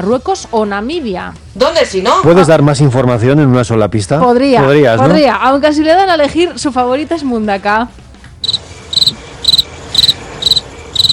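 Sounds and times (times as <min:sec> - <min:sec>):
speech: 0:00.0 - 0:08.0
cricket chirping: 0:08.4 - 0:11.1.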